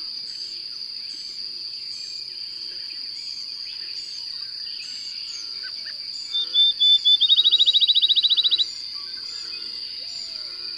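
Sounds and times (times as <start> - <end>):
bird singing short whistled notes and rapid repeated trill: 6.2 - 8.8.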